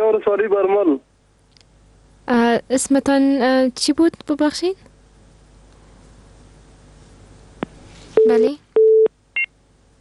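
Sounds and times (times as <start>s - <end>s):
speech: 0.1s - 1.1s, 2.3s - 4.9s, 8.2s - 8.6s
telephone busy tone after a call was cut off: 8.2s - 9.5s.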